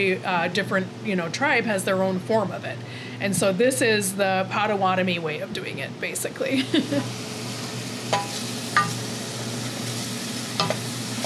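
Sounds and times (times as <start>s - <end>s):
speech: 0.0s - 7.3s, 8.1s - 8.4s
onions sautéing in a pan on a stove for soup: 6.8s - 11.2s.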